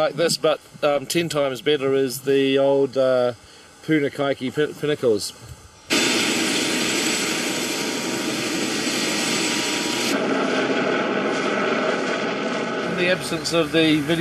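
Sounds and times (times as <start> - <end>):
speech: 0.0 - 5.6, 13.0 - 14.1
helicopter engine and rotors: 5.9 - 14.1.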